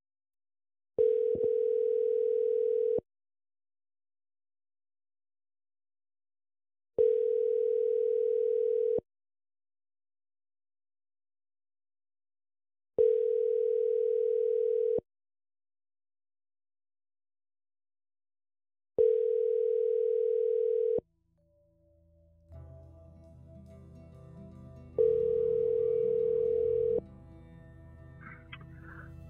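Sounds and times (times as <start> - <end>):
electronic ringback tone of an outgoing phone call through an earpiece: 1.0 - 3.0, 7.0 - 9.0, 13.0 - 15.0, 19.0 - 21.0, 25.0 - 27.0.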